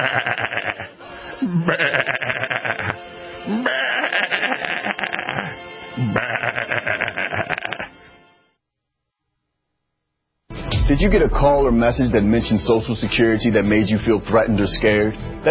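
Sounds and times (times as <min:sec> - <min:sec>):
speech: 0:00.0 - 0:00.4, 0:01.4 - 0:02.2, 0:11.0 - 0:15.5
sheep bleating: 0:01.6 - 0:03.0, 0:03.6 - 0:08.1.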